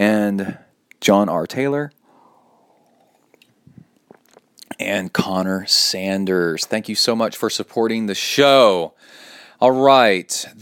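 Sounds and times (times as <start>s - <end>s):
speech: 0.0s - 2.0s, 4.8s - 10.6s
person sipping coffee: 2.0s - 4.8s.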